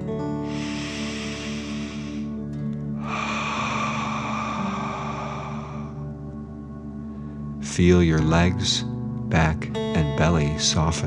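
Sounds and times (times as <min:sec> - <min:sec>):
slow airy inhale: 0:00.3 - 0:07.6
forceful hissing exhale: 0:00.4 - 0:06.1
speech: 0:07.8 - 0:11.0.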